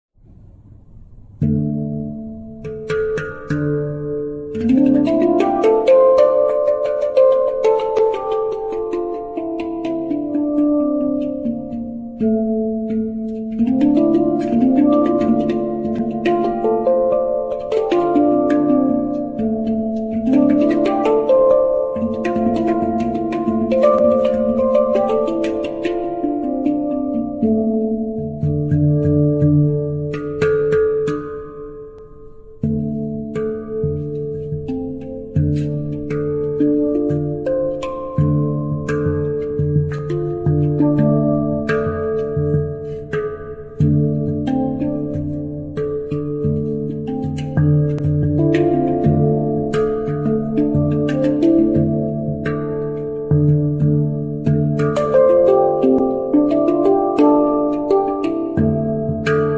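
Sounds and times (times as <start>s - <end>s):
eleven-note handpan notes: 0.2s - 59.5s.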